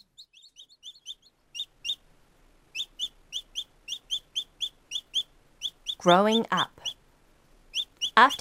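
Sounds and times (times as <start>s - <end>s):
young thrush chicks chirping loudly in nest: 0.0s - 8.3s
speech: 6.0s - 6.8s, 8.2s - 8.3s.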